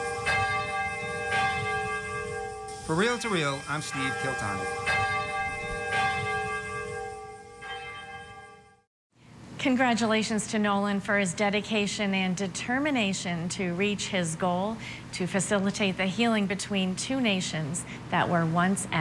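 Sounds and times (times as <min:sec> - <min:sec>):
large cathedral bell tolling: 0:00.0 - 0:08.8
speech: 0:02.9 - 0:05.0, 0:09.6 - 0:18.9.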